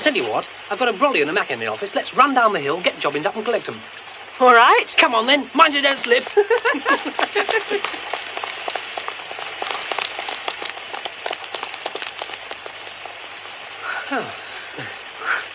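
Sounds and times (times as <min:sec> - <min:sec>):
heavy rain spattering on hard surfaces: 0:00.0 - 0:15.5
speech: 0:00.1 - 0:08.2, 0:14.1 - 0:15.0
laughter: 0:06.3 - 0:08.0
faint voice-like sounds: 0:13.8 - 0:15.5.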